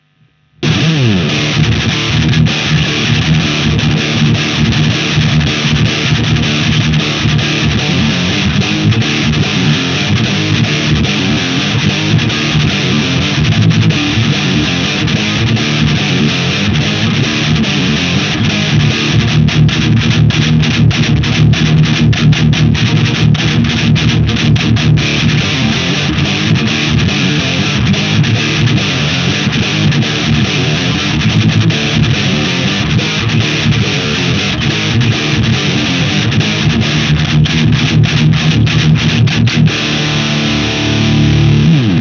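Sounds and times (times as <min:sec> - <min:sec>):
distorted guitar drive riff in drop D: 0:00.0 - 0:41.9.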